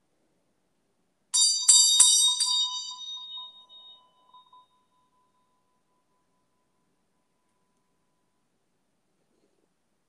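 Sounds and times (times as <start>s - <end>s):
meditation bell struck and ringing: 1.4s - 8.5s.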